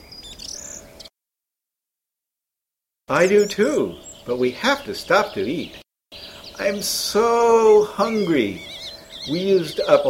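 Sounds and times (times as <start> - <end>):
birds chirping and whistling in a snowy forest: 0.0 - 1.1, 3.1 - 10.0
speech: 3.1 - 5.8, 6.6 - 10.0.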